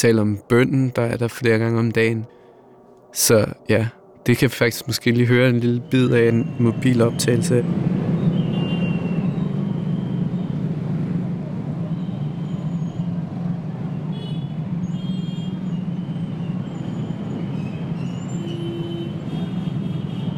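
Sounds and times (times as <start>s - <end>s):
speech: 0.0s - 2.4s, 3.1s - 8.0s
busy street traffic engines rumbling at a five-road intersection in Bandung, Indonesia: 0.0s - 20.3s
faint whistles from traffic directors: 1.6s - 20.3s.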